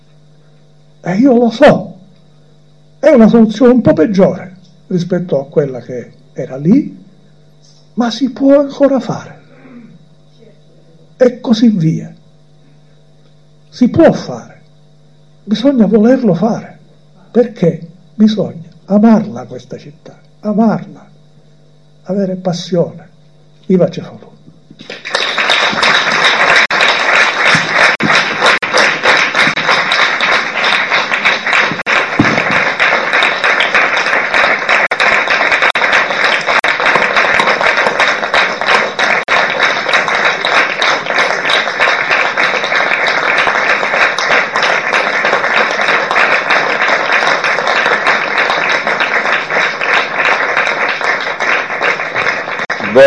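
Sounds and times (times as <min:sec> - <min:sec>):
speech: 0:01.0 - 0:01.9, 0:03.1 - 0:07.0, 0:08.0 - 0:09.4, 0:11.2 - 0:12.2, 0:13.7 - 0:14.5, 0:15.4 - 0:16.7, 0:17.3 - 0:21.1, 0:22.1 - 0:23.1, 0:23.7 - 0:25.1
large crowd applauding: 0:24.8 - 0:53.0.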